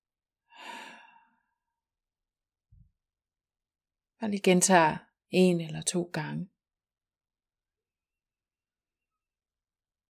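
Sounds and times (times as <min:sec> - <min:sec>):
deep breath in nose, out mouth as a breathy sigh: 0:00.5 - 0:01.5
speech: 0:04.2 - 0:06.5.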